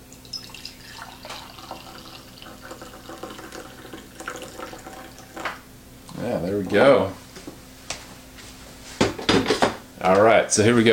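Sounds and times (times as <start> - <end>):
Santo Domingo drip coffee poured into a cup: 0.1 - 5.6
speech: 6.2 - 7.2, 10.0 - 10.9.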